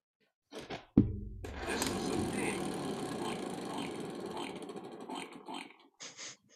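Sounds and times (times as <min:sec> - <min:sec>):
spinning prize wheel clicking: 0:01.6 - 0:05.8.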